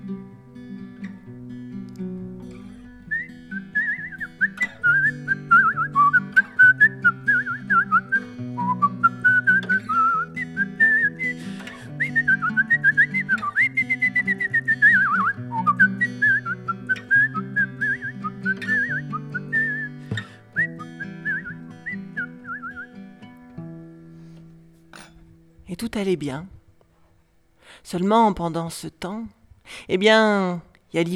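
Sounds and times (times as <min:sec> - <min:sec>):
person whistling an imitation of a blackbird's song: 0:02.9 - 0:23.0
speech: 0:26.0 - 0:26.6, 0:27.9 - 0:31.1.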